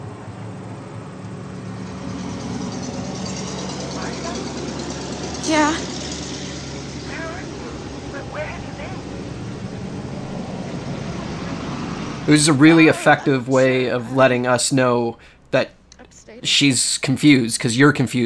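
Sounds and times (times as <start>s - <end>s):
old jalopy truck engine rumbling: 0.0s - 18.2s
speech: 5.5s - 5.9s, 12.3s - 15.8s, 16.4s - 18.2s
voice murmuring faintly: 12.3s - 16.8s
laughter: 12.3s - 18.0s.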